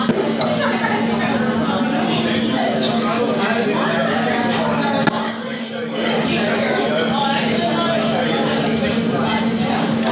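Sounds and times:
many voices talking in a local Vietnamese restaurant: 0.0s - 10.1s
dishes and cutlery clinking: 2.7s - 3.1s.

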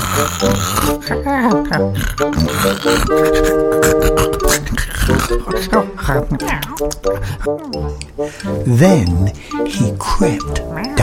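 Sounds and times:
voice imitating snoring: 0.0s - 7.5s
speech: 0.2s - 11.0s
laughter: 3.1s - 4.7s.

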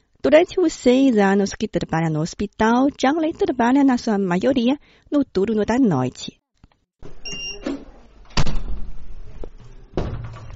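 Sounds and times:
speech: 0.3s - 6.4s
hospital door opening with a short squeaky creak: 7.0s - 10.5s
hospital door swinging shut with a heavy thud: 7.1s - 9.3s, 9.9s - 10.5s.

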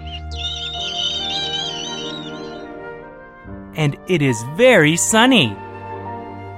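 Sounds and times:
high wavering mouse squeak: 0.0s - 2.7s
steady low musical backing: 0.0s - 6.5s
speech: 3.8s - 5.7s.

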